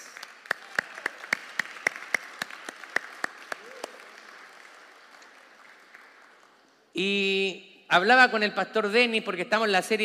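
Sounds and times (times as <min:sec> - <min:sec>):
audience applauding for the mothers on Mother's Day: 0:00.0 - 0:06.9
speech: 0:07.0 - 0:10.0.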